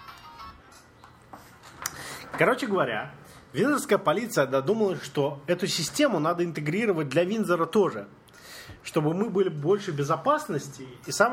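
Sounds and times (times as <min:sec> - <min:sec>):
electronic phone ringtone: 0:00.0 - 0:00.6
speech: 0:02.4 - 0:08.2, 0:08.8 - 0:11.3.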